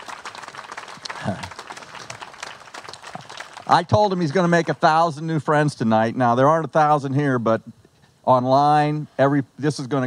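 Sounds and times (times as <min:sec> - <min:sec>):
audience applause: 0:00.0 - 0:05.0
speech: 0:01.2 - 0:01.5, 0:03.7 - 0:10.0.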